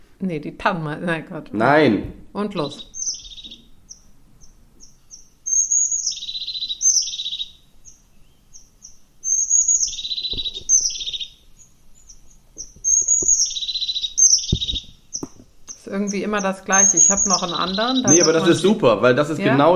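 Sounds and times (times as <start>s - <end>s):
speech: 0.2s - 3.0s, 16.1s - 19.7s
faint bird chirps: 2.4s - 18.8s
crested tit trilling song: 2.4s - 19.6s.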